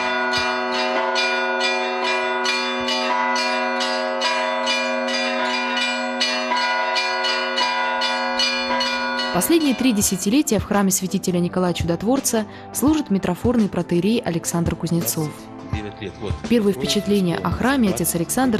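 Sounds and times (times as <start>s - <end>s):
church bells pealing: 0.0s - 10.6s
speech: 9.4s - 18.5s.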